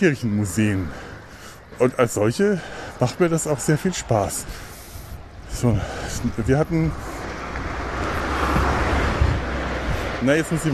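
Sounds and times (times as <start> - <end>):
speech: 0.0 - 1.1, 1.8 - 4.7, 5.5 - 7.2, 10.2 - 10.7
many cars driving past on a road: 0.0 - 10.7
wind noise: 4.2 - 10.7.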